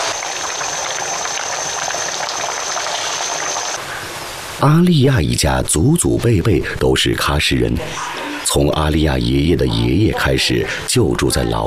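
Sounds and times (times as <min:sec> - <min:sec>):
rice simmering in a covered pot: 0:00.0 - 0:03.8
speech: 0:04.6 - 0:11.6.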